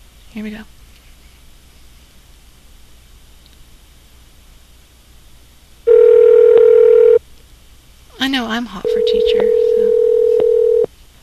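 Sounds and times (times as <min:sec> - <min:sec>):
speech: 0:00.3 - 0:00.8, 0:08.6 - 0:09.9
telephone dial tone while dialing a call: 0:05.9 - 0:07.2, 0:08.8 - 0:10.9.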